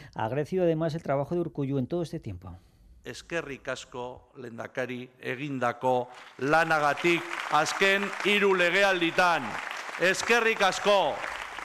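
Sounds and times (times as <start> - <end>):
speech: 0.2 - 11.4
gathered party members applauding: 6.0 - 11.6.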